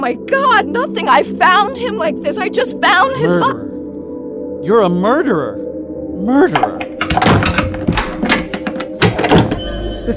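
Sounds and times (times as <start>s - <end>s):
speech: 0.0s - 3.7s, 4.6s - 7.6s
thunks and metallic clunks of lock tumblers tightening: 6.5s - 9.7s
heavy laboratory door slamming shut: 6.9s - 9.8s.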